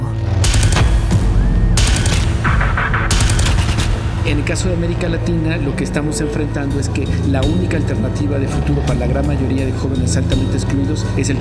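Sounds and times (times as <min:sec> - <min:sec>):
dense rumbling background: 0:00.0 - 0:11.3
automatic gunfire bursts: 0:01.8 - 0:04.2
speech: 0:04.3 - 0:11.3.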